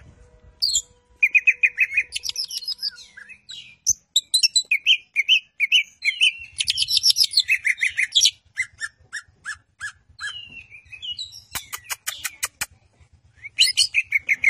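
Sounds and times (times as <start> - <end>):
greater green leafbird champion song with chirps trills and whistled phrases: 0.6 - 12.7, 13.3 - 14.4
greater green leafbird rapid clicking notes: 11.5 - 12.7.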